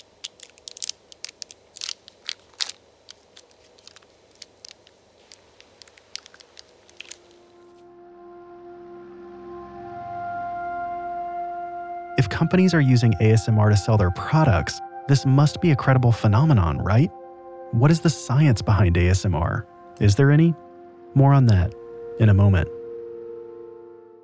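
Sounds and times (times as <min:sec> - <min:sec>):
chocolate wrapper crinkling as it is unwrapped: 0:00.0 - 0:07.8
soft steady tonal background in a chocolate advertisement: 0:00.0 - 0:24.2
speech: 0:12.2 - 0:20.6, 0:21.2 - 0:22.8.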